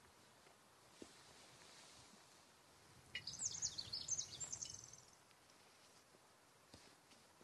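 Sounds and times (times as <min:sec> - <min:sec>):
soft steady wind hissing through a forest: 0:00.0 - 0:07.4
high twittering bird chirps: 0:03.1 - 0:05.2.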